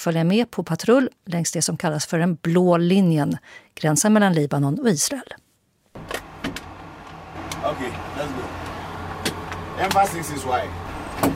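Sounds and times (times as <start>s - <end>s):
speech: 0.0s - 5.4s, 9.8s - 11.3s
armoured car doors clunking shut: 6.0s - 11.3s
armoured car electric window whirring: 6.0s - 11.3s
armoured car engine idling: 6.0s - 11.3s.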